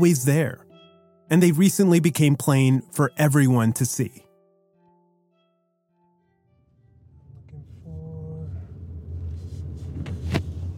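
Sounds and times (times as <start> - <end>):
speech: 0.0 - 0.7, 1.3 - 4.3
car engine rumble pulling into a driveway: 7.2 - 10.7.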